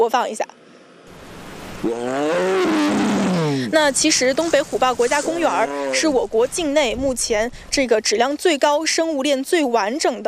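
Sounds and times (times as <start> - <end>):
speech: 0.0 - 0.6, 1.8 - 3.0, 3.6 - 10.2
Siberian tiger roaring in Northeast Tiger and Leopard National Park China: 1.2 - 6.2.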